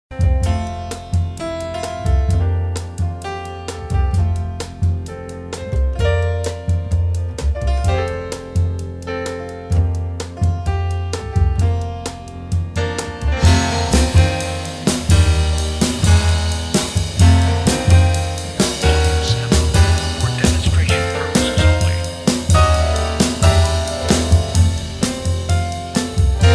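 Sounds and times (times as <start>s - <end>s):
jazz piano: 0.1s - 26.5s.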